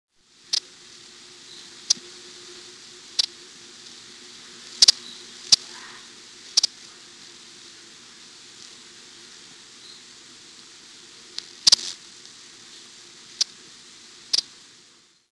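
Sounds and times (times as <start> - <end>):
broad-billed hummingbird: 0.4 - 8.3, 9.7 - 10.2, 11.6 - 11.9, 14.3 - 14.5.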